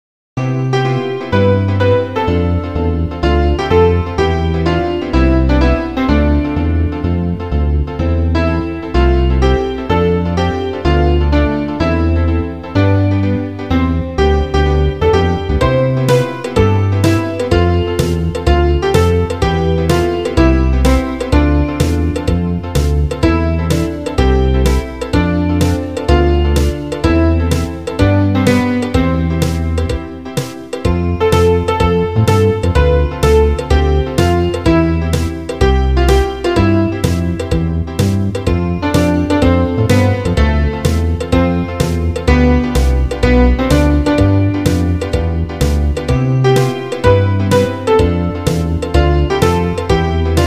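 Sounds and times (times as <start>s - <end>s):
piano: 0.4s - 50.4s
drum: 15.6s - 50.4s.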